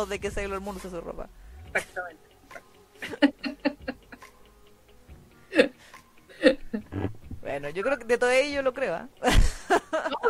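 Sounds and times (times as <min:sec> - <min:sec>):
speech: 0:00.0 - 0:03.5, 0:07.6 - 0:10.2
laughter: 0:03.0 - 0:04.2, 0:09.2 - 0:10.2
microphone stand rattling close to the mic: 0:06.9 - 0:07.5.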